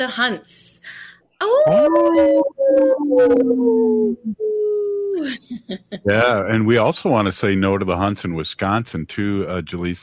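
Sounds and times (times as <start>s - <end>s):
speech: 0.0s - 10.0s
wolf howling in long wavering tones: 1.5s - 5.2s.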